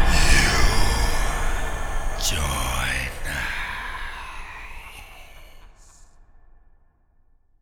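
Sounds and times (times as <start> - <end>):
zombie game win jingle: 0.1 - 5.6.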